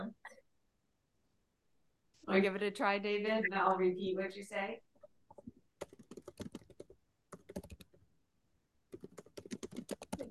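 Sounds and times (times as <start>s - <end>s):
speech: 2.3s - 4.9s
typing on a computer keyboard: 5.3s - 8.0s, 8.9s - 10.2s.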